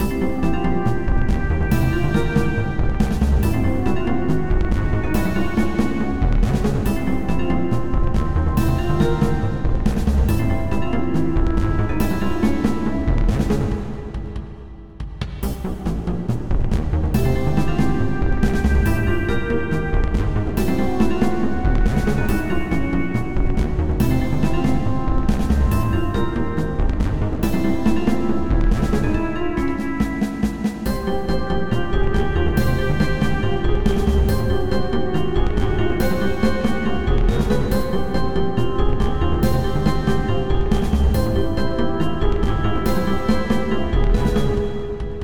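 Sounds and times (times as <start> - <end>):
background music: 0.0 - 45.2.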